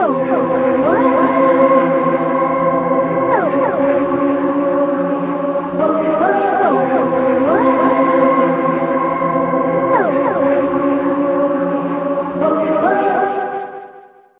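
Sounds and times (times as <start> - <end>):
gliding synth intro: 0.0 - 13.2.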